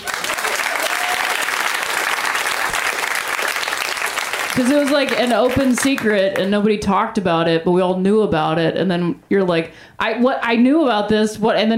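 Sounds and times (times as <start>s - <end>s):
crowd applauding: 0.0s - 6.5s
speech: 4.6s - 11.7s.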